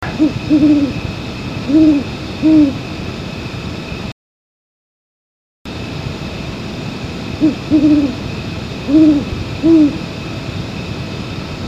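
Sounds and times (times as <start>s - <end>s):
male great horned owl calling: 0.0s - 1.0s, 1.6s - 2.8s, 7.4s - 8.2s, 8.9s - 10.1s.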